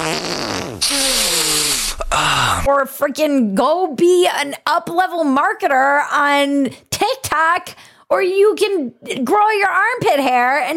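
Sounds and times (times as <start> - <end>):
fart sound effect: 0.0 - 2.1
speech: 2.7 - 10.7.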